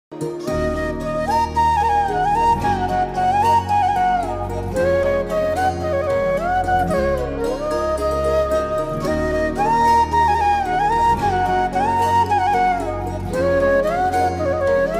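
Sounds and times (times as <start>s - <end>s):
flute ringtone: 0.4s - 14.9s.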